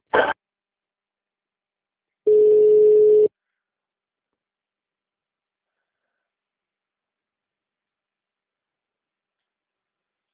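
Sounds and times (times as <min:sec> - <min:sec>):
telephone ringback tone during a bank customer-service call transfer: 0:02.3 - 0:03.3.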